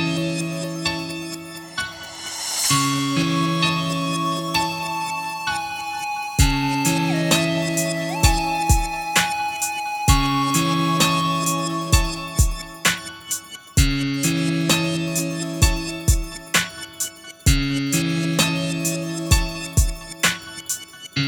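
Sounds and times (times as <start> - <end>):
music beat: 0.2 - 21.2.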